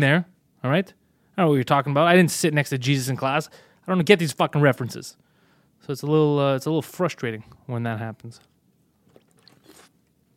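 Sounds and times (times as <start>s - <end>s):
speech: 0.0s - 8.5s
person sipping water: 9.0s - 10.3s.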